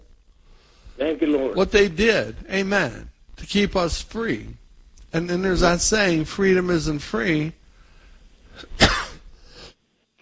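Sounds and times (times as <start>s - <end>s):
speech: 1.0s - 7.6s
person coughing into the microphone: 8.6s - 9.2s.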